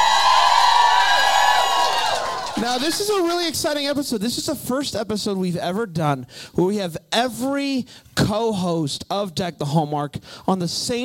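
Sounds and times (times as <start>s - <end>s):
excited shouts: 0.0s - 3.3s
live audience cheering and whooping at an evening stage event: 0.0s - 3.6s
speech: 2.6s - 11.0s.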